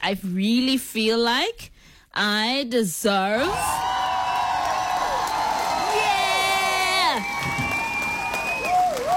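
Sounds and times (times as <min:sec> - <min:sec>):
speech: 0:00.0 - 0:03.8
crowd cheering and applauding: 0:03.5 - 0:09.1
loud whistles and whoops from the crowd: 0:03.6 - 0:09.1.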